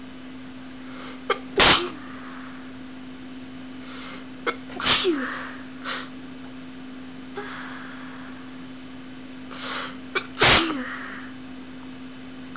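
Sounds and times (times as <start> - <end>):
woman sneezing: 1.3 - 2.1, 4.5 - 5.6, 9.6 - 11.2.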